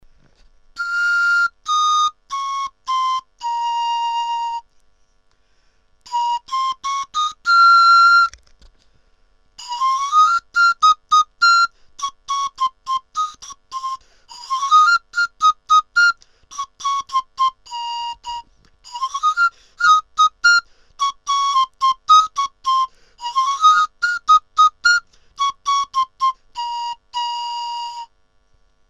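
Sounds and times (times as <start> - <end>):
panpipe: 0.8 - 4.7, 6.0 - 8.5, 9.6 - 28.2.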